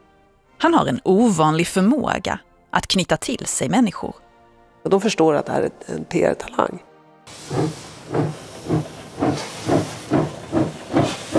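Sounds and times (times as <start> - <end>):
speech: 0.6 - 4.2, 4.8 - 6.9, 7.5 - 8.8
steam locomotive chuffing as the train leaves the station in Zürich: 7.3 - 11.3.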